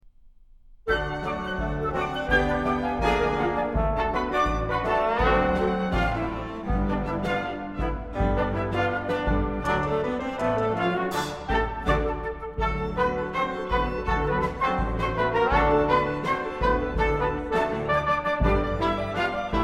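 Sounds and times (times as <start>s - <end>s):
ragtime orchestra playing a rag: 0.9s - 19.6s.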